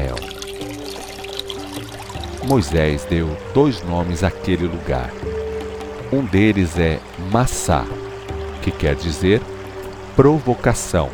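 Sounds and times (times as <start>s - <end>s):
water gushing out of a rock: 0.0s - 11.1s
speech: 2.5s - 5.3s, 6.1s - 8.0s, 8.6s - 9.5s, 10.2s - 11.1s.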